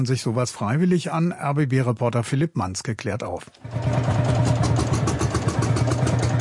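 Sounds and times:
speech: 0.0s - 4.2s
old tractor engines chugging and rattling at rough idle: 3.6s - 6.4s.

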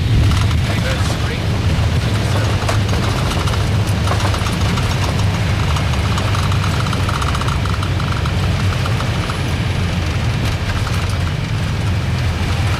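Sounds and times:
airliner jet engines running after landing, before shutdown: 0.0s - 12.7s.

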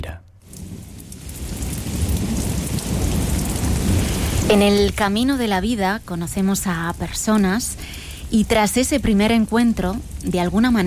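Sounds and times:
steady heavy downpour: 0.4s - 10.8s
deep rolling thunder: 0.5s - 7.3s
speech: 4.5s - 10.8s.

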